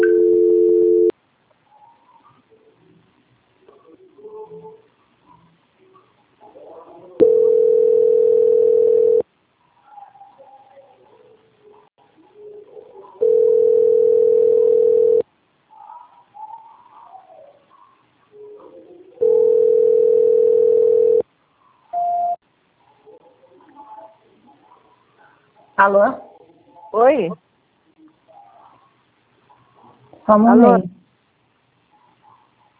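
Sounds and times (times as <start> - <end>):
telephone line tone while a dropped call is transferred: 0.0 - 1.1, 7.2 - 9.2, 13.2 - 15.2, 19.2 - 21.2
speech: 25.9 - 26.2, 27.0 - 27.4, 30.3 - 31.0.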